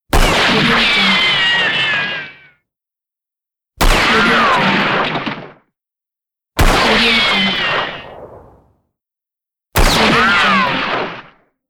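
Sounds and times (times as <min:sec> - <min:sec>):
spaghetti western gunshot: 0:00.1 - 0:02.0, 0:03.8 - 0:05.7, 0:06.6 - 0:08.8, 0:09.8 - 0:11.5.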